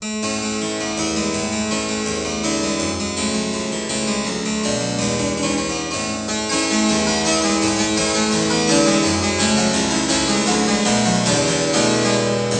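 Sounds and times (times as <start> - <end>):
harpsichord: 0.0 - 12.5.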